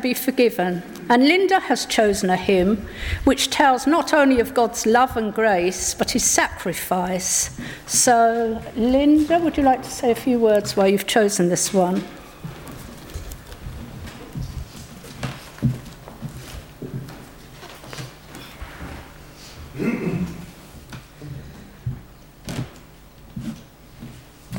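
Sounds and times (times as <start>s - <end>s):
speech: 0.0s - 12.2s
paper sheets and sheet music rustling and shuffling: 12.6s - 19.1s.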